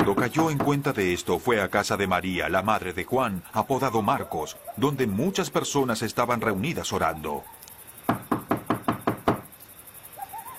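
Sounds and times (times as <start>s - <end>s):
speech: 0.0s - 7.6s
knocking on a wooden street door: 8.1s - 9.5s.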